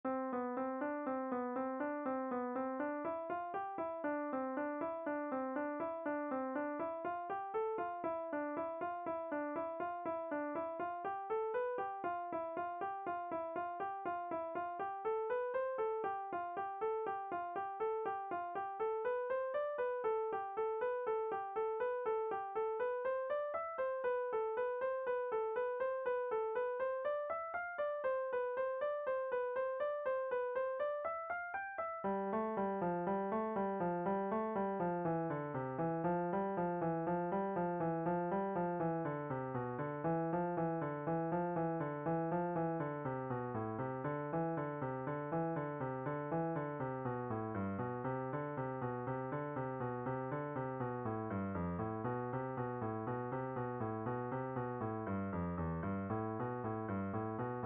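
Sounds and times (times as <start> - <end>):
piano playing crossing two over one: 0.1 - 57.6.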